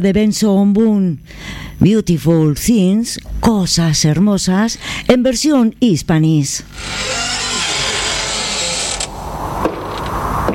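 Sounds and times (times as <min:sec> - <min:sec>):
speech: 0:00.0 - 0:07.5
door hinge creaking: 0:06.7 - 0:09.2.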